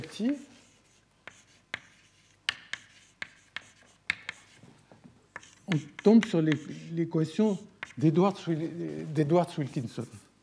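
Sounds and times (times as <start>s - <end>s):
writing an equation on a board during a lecture: 0.0s - 4.7s, 5.3s - 8.2s
speech: 0.1s - 0.5s, 5.7s - 10.2s.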